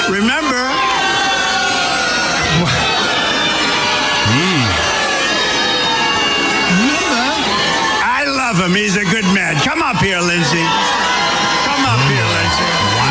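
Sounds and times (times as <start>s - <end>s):
large crowd cheering at a rally: 0.0s - 13.1s
scattered whoops and rising yells: 0.0s - 13.1s
speech: 0.1s - 0.7s.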